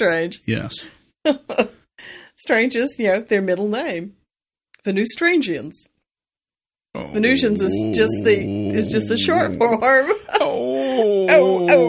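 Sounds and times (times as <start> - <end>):
speech: 0.0 - 4.2, 4.8 - 5.9, 6.9 - 11.8
human voice imitating a dog whining and barking: 7.0 - 11.8.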